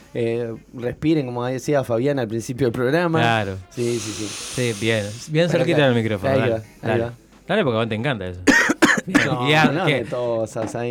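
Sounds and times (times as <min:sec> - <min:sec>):
speech: 0:00.1 - 0:10.8
strained drawn-out throaty vocal sound: 0:03.2 - 0:05.4
person coughing sharply and raspily: 0:08.5 - 0:09.4.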